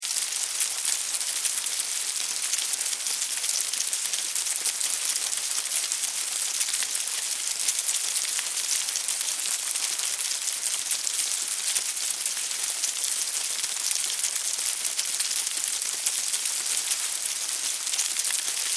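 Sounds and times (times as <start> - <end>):
insects in a hive with heavy activity: 0.0 - 18.7.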